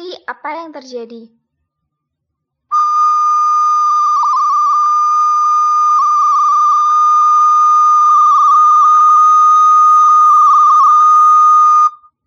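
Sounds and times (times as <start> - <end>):
speech: 0.3 - 1.4
bamboo flute holding a high note with all six holes open: 2.7 - 12.2.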